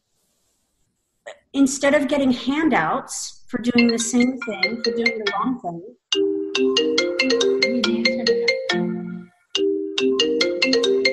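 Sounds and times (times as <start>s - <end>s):
speech: 1.5s - 6.0s
phone ringtone melody: 3.8s - 5.5s, 6.1s - 11.1s.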